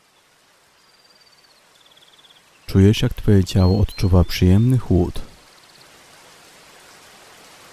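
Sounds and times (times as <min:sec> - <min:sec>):
person speaking softly: 0:02.7 - 0:05.4
heavy rain pouring down: 0:02.7 - 0:07.7
speech: 0:02.8 - 0:05.3.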